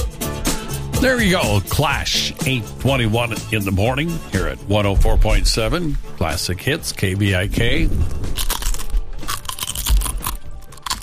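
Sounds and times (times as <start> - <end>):
speech: 1.0 - 8.5
potato chips being chewed: 8.0 - 11.0.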